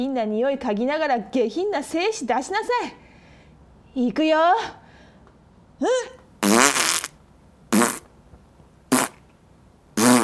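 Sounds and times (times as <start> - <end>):
speech: 0.0 - 3.0, 4.0 - 4.8, 5.8 - 6.2
loud raspy farts: 6.4 - 8.1, 8.9 - 9.2, 10.0 - 10.2.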